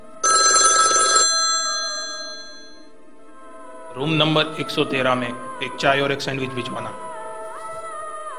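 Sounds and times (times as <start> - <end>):
telephone bell ringing at a call center: 0.2 - 2.8
speech: 4.0 - 7.0.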